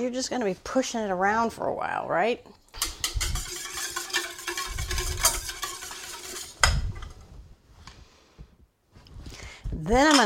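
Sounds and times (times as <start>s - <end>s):
speech: 0.0s - 2.9s, 9.8s - 10.2s
whisk beating an egg in a bowl: 2.8s - 7.2s.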